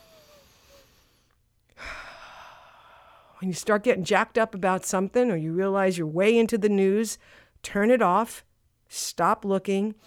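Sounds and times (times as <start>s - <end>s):
deep slow mindful breath in and out: 0.0s - 3.4s, 7.2s - 7.6s
speech: 3.4s - 10.0s.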